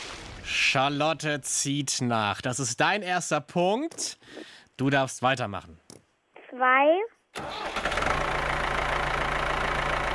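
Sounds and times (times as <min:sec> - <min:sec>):
speech: 0:00.7 - 0:05.8, 0:06.6 - 0:07.9
tractor engine cranking and idling: 0:07.4 - 0:10.1.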